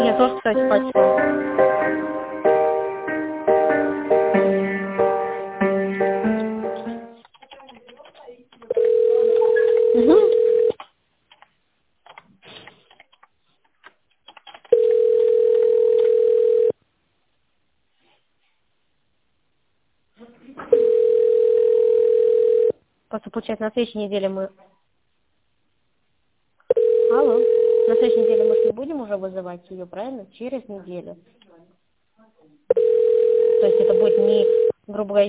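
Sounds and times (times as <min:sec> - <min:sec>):
tonal melodic sound: 0:00.0 - 0:07.2
speech: 0:00.2 - 0:02.0, 0:23.4 - 0:24.7, 0:29.2 - 0:31.4, 0:33.6 - 0:35.2
telephone ringing tone while waiting for an answer: 0:08.7 - 0:10.8, 0:14.7 - 0:16.8, 0:20.7 - 0:22.8, 0:26.7 - 0:28.8, 0:32.7 - 0:34.8.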